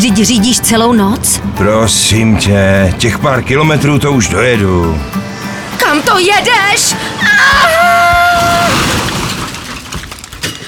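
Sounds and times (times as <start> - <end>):
speech: 0.0 - 9.2
crunching and rattling debris from a car crash: 6.2 - 10.6
brief high screech of a car crashing into a tree: 7.0 - 10.6
car crashing into a tree: 7.2 - 10.6.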